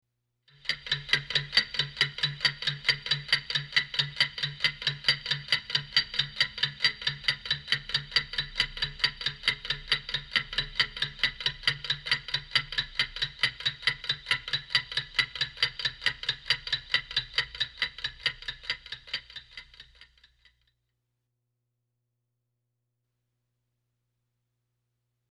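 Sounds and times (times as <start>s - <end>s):
clock ticking: 0.6s - 20.6s.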